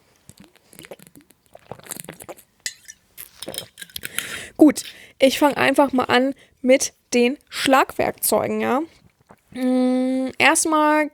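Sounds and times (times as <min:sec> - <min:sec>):
glasses clinking in a toast: 0:02.7 - 0:04.9
speech: 0:04.6 - 0:11.1.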